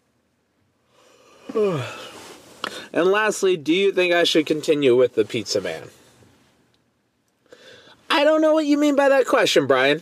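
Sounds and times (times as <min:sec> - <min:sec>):
person yawning: 0:01.3 - 0:02.2
speech: 0:01.5 - 0:02.0, 0:02.9 - 0:06.0, 0:08.2 - 0:09.9.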